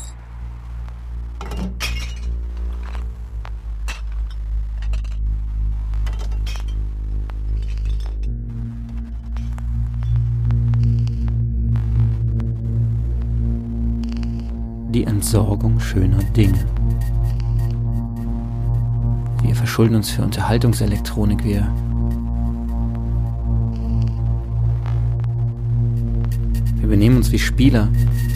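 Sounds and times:
steady low droning hum: 0:00.0 - 0:28.3
glass shattering with clinking shards: 0:01.4 - 0:02.4
speech: 0:15.2 - 0:16.8, 0:19.6 - 0:21.9, 0:26.8 - 0:28.3.

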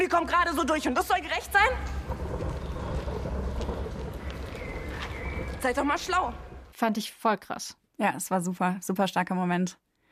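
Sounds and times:
speech: 0:00.0 - 0:02.5, 0:05.6 - 0:10.1
thunder rumbling in a thunderstorm: 0:00.0 - 0:06.8
steady hiss of rain: 0:01.8 - 0:06.7.

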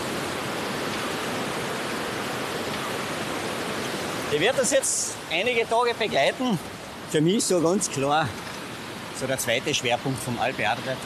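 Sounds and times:
river water rushing: 0:00.0 - 0:11.0
speech: 0:04.3 - 0:08.5, 0:09.2 - 0:11.0.

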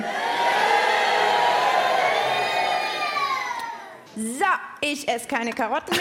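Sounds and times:
large audience shouting in unison: 0:00.0 - 0:04.0
speech: 0:04.5 - 0:05.9.

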